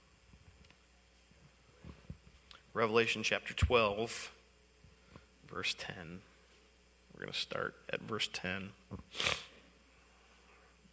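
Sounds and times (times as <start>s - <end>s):
speech: 2.8s - 4.4s, 5.5s - 6.3s, 7.2s - 9.5s
nose sniffing from allergies: 9.1s - 9.6s.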